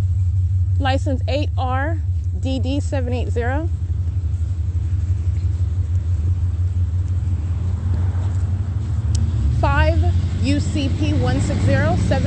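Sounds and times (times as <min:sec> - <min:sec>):
speech: 0:00.8 - 0:03.8, 0:09.8 - 0:12.2
vehicle driving past: 0:03.6 - 0:12.2.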